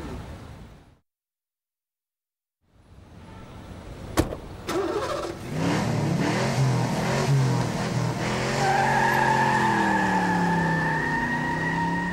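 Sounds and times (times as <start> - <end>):
car door slam: 4.1 - 4.8
car tires skidding: 4.7 - 12.1
getaway car engine revving: 4.9 - 12.1.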